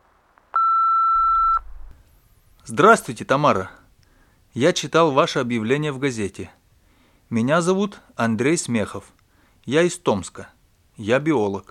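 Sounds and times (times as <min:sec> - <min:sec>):
answering machine beep: 0:00.6 - 0:01.7
low telephone line hum: 0:01.2 - 0:02.6
speech: 0:02.7 - 0:03.8, 0:04.5 - 0:06.6, 0:07.3 - 0:11.7.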